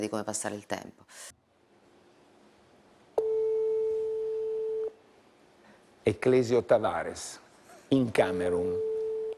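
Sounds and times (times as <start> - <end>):
speech: 0.0 - 1.4, 6.0 - 8.9
telephone busy tone after a call to Cameroon was hung up: 3.2 - 5.0, 8.7 - 9.3.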